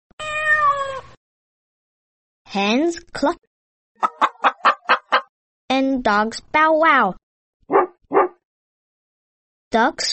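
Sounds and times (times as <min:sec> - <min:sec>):
cat meowing: 0:00.2 - 0:01.2
speech: 0:02.5 - 0:04.3, 0:05.7 - 0:07.9, 0:09.7 - 0:10.1.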